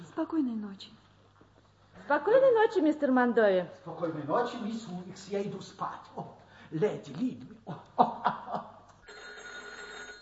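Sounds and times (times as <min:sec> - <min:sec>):
speech: 0:00.2 - 0:01.0, 0:02.0 - 0:08.7
laughter: 0:07.6 - 0:09.0
telephone bell ringing in a hotel at night: 0:09.0 - 0:10.2.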